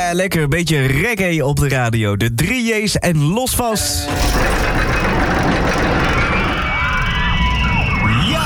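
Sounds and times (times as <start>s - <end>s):
speech: 0.1s - 5.7s
rollercoaster rumbling along its track at an amusement park: 4.1s - 8.4s.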